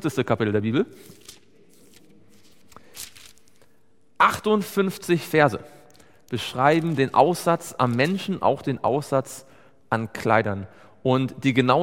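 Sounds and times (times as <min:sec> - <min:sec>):
speech: 0:00.0 - 0:01.4, 0:04.2 - 0:05.7, 0:06.3 - 0:11.8
pages of a book being leafed through: 0:01.0 - 0:03.7, 0:06.3 - 0:08.3.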